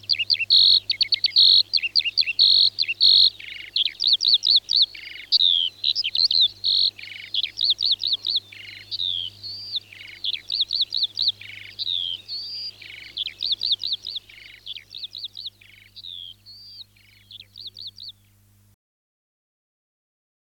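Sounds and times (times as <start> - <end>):
Eurasian skylark Alauda arvensis singing: 0.0 - 18.4.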